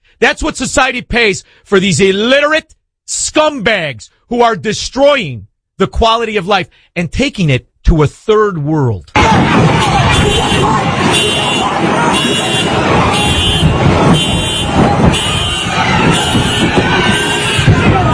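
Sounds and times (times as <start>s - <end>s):
speech: 0.2s - 11.3s
noisy crowd shouting: 9.2s - 18.1s
car alarms blaring: 9.6s - 18.1s.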